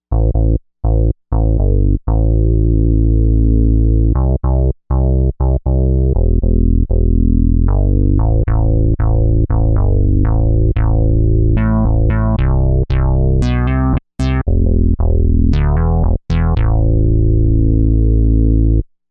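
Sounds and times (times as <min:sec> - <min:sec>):
Softena bass on a Novation UltraNova synthesizer: 0:00.1 - 0:19.0.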